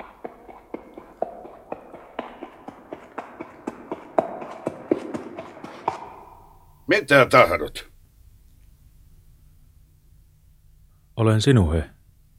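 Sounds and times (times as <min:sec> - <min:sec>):
donkey hooves clip-clopping at a walking pace: 0:00.0 - 0:06.9
speech: 0:06.9 - 0:07.9, 0:11.2 - 0:12.0.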